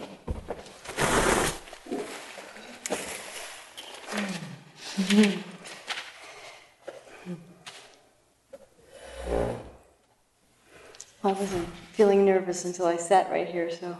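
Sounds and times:
furniture being shifted around scraping: 0.4s - 1.7s, 9.1s - 9.8s
speech: 5.1s - 5.5s, 11.3s - 13.9s.

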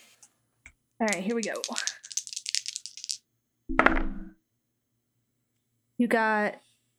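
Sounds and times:
speech: 1.0s - 2.0s, 6.0s - 6.7s
red dice rattling in a cupped hand: 1.0s - 3.2s.

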